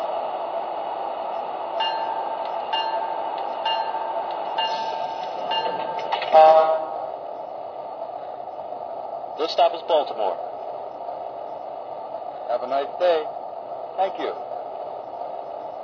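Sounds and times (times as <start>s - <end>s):
passenger train rolling into station rumbling: 0.0s - 15.8s
passenger train wheels clicking over rail joints: 1.7s - 6.5s
high passenger train brake squeal: 4.5s - 6.9s
speech: 9.5s - 10.5s, 12.5s - 13.4s, 14.0s - 14.4s.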